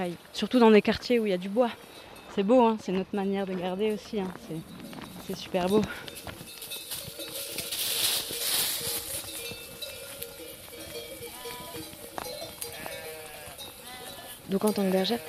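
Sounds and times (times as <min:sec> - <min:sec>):
speech: 0:00.0 - 0:06.4, 0:14.5 - 0:15.2
rustling and clinking in a pasture: 0:04.0 - 0:15.2
flock of ewes bleating: 0:10.7 - 0:15.2.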